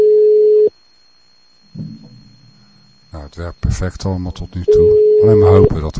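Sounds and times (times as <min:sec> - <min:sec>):
telephone ringing tone when calling a mobile phone: 0:00.0 - 0:00.7, 0:04.7 - 0:05.7
speech: 0:03.3 - 0:05.9.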